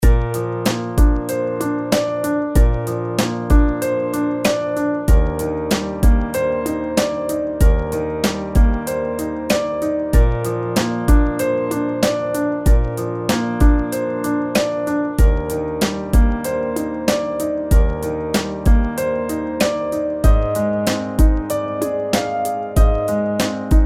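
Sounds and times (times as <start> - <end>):
drums: 0.0 - 23.8
sweet piano loop: 0.0 - 23.8.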